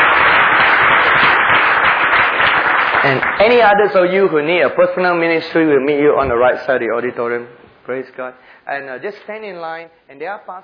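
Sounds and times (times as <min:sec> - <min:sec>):
church congregation applauding in a service: 0:00.0 - 0:04.4
speech: 0:03.0 - 0:10.6.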